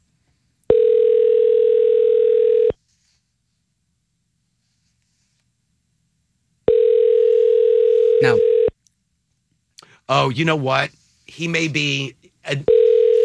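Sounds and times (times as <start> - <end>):
telephone ring-back tone before reaching voicemail: 0.7 - 2.8, 6.7 - 8.7, 12.6 - 13.2
speech: 10.1 - 12.8.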